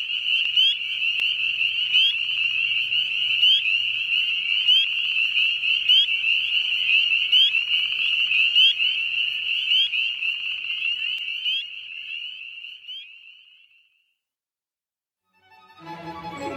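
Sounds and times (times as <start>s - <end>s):
spring peeper frogs peeping in a dense chorus: 0.0s - 14.0s.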